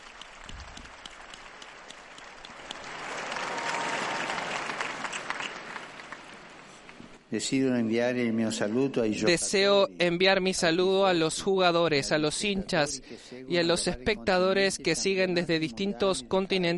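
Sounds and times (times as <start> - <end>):
large crowd applauding: 0.0 - 7.2
speech: 7.3 - 16.7.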